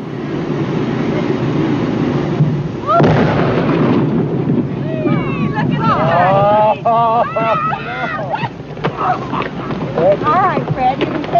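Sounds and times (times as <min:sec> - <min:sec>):
dynamite blast blowing up a beached whale on an Oregon beach: 0:00.0 - 0:07.3
laughter: 0:05.7 - 0:11.3.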